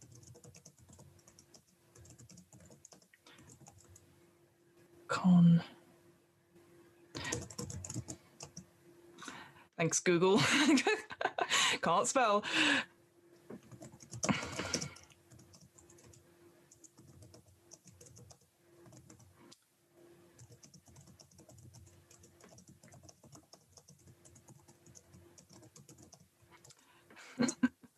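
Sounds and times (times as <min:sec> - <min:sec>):
typing on a computer keyboard: 0:00.0 - 0:04.0, 0:07.1 - 0:08.6, 0:13.6 - 0:19.6, 0:20.4 - 0:26.8
speech: 0:05.1 - 0:05.8, 0:09.8 - 0:11.0, 0:11.8 - 0:12.9.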